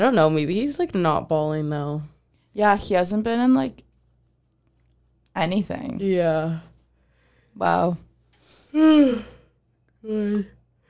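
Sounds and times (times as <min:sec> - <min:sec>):
speech: 0:00.0 - 0:03.9, 0:05.4 - 0:06.7, 0:07.6 - 0:08.1, 0:08.7 - 0:09.3, 0:10.0 - 0:10.6
person yawning: 0:08.7 - 0:09.4, 0:10.0 - 0:10.6.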